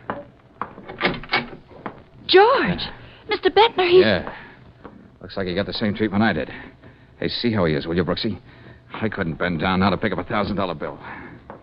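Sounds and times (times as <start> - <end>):
wooden door pulled open with scraping: 0.8 - 1.8
speech: 2.3 - 4.4, 5.3 - 11.2.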